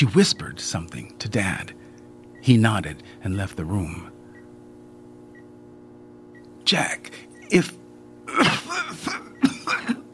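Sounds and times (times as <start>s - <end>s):
speech: 0.0s - 1.8s, 2.4s - 4.1s, 6.7s - 9.2s
voice imitating a woman's fit of coughing: 8.3s - 10.1s.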